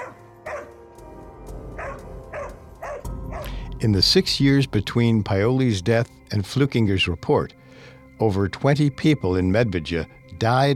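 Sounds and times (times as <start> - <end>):
large dog barking: 0.0 - 0.8, 1.8 - 3.6
low rumbling background: 1.2 - 8.2
speech: 3.8 - 7.6, 8.2 - 10.7.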